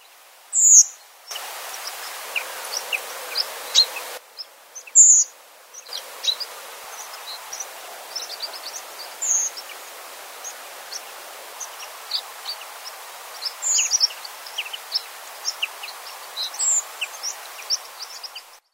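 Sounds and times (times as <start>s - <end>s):
redwing singing: 0.6s - 18.6s
chorus of other birds chirping and twittering outdoors: 0.6s - 18.7s.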